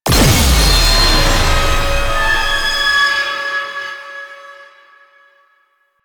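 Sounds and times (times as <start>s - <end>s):
enemy weak point destroyed sound effect: 0.0s - 3.0s.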